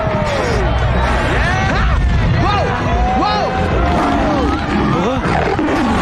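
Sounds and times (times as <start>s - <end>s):
continuous crowd-like noise and voices: 0.0s - 6.0s
lions roaring in an animated film scene: 3.8s - 6.0s.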